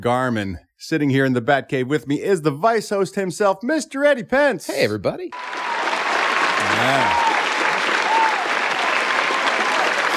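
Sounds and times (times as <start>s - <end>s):
speech: 0.0s - 5.7s, 6.6s - 7.4s
crowd applause: 5.3s - 10.1s
person whooping: 6.6s - 10.1s.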